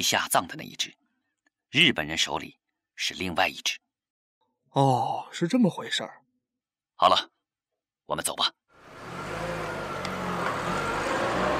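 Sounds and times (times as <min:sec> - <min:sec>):
speech: 0:00.0 - 0:01.0, 0:01.7 - 0:03.8, 0:04.7 - 0:06.2, 0:07.0 - 0:07.4, 0:08.1 - 0:08.6
truck engine rumbling as the vehicle pulls away: 0:08.8 - 0:11.5.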